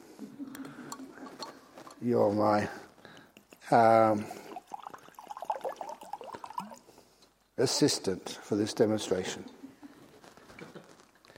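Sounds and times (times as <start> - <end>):
water pouring into a cup: 0.7 - 7.1
speech: 2.0 - 2.8, 3.7 - 4.4, 7.6 - 9.6.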